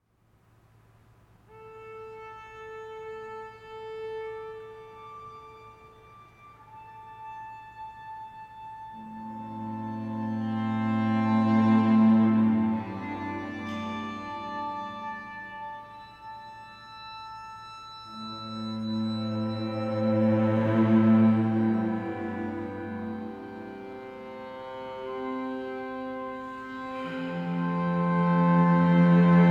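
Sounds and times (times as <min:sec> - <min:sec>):
string quartet playing with lots of reverb: 0:01.5 - 0:29.5.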